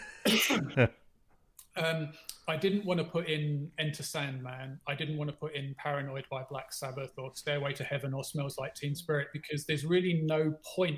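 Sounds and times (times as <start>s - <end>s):
man clearing his throat: 0.1s - 1.0s
speech: 0.2s - 1.0s, 1.8s - 10.9s.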